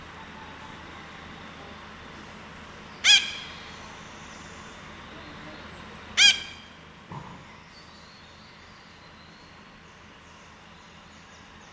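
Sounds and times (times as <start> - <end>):
steady background noise: 0.0 - 11.7
red-breasted parakeet screeching: 3.0 - 3.6, 6.2 - 6.6.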